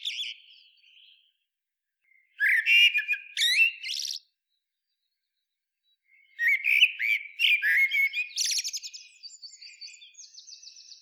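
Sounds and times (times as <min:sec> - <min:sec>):
Eurasian blackbird Turdus merula singing: 0:00.0 - 0:01.3, 0:02.2 - 0:04.3, 0:06.1 - 0:11.0.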